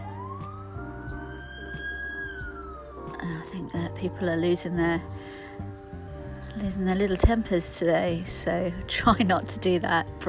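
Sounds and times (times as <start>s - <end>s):
emergency siren wailing outside: 0.0s - 8.2s
speech: 3.1s - 5.7s, 6.6s - 10.2s.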